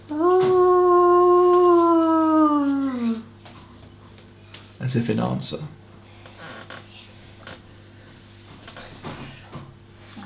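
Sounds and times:
long single howl across the prairie: 0:00.1 - 0:03.3
speech: 0:04.9 - 0:05.8.

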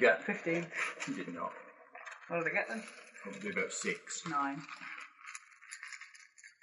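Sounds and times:
speech: 0:00.0 - 0:01.7, 0:02.3 - 0:05.0
dice being rummaged and rattled: 0:03.7 - 0:06.6.

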